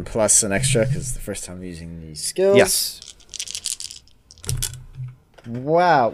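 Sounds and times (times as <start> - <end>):
speech: 0.0 - 3.1, 5.5 - 6.1
ten-sided dice rolling on a hard table: 2.8 - 4.8.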